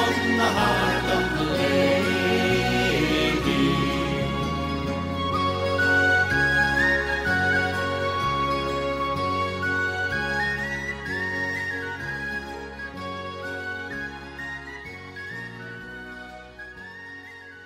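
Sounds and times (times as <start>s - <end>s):
bright high whistle melody in a folk song: 0.0s - 17.6s
folk band accompaniment with bouncing bass and strummed rhythm: 0.0s - 17.6s
speech: 0.1s - 1.2s.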